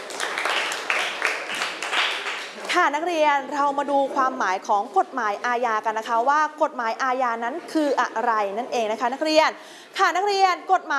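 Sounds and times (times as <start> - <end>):
students in a classroom clapping for a classmate: 0.0 - 2.7
speech: 2.8 - 10.9.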